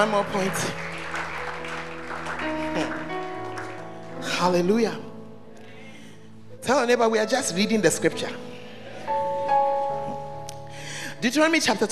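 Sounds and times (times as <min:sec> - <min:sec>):
speech: 0:00.0 - 0:00.9, 0:02.4 - 0:03.0, 0:04.2 - 0:05.1, 0:06.6 - 0:08.5, 0:11.2 - 0:11.9
congregation clapping: 0:00.0 - 0:04.4
sustained keyboard or organ chords: 0:00.0 - 0:07.2, 0:08.2 - 0:11.9.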